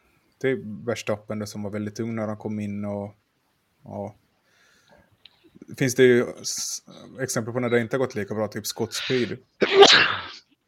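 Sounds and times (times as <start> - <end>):
speech: 0.4 - 3.2, 3.8 - 4.2, 5.7 - 10.3
loud sneeze: 9.0 - 10.5.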